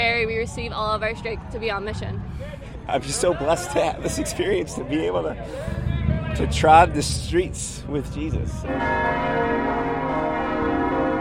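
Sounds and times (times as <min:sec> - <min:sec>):
speech: 0:00.4 - 0:09.8
church bells tolling at a cathedral in Dallas: 0:08.7 - 0:11.1.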